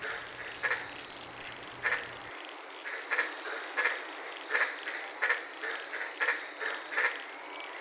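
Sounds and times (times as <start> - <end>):
soft hiss: 0.0 - 7.7
white-lipped tree frogs croaking at night in the Daintree rainforest, Queensland: 0.0 - 7.7.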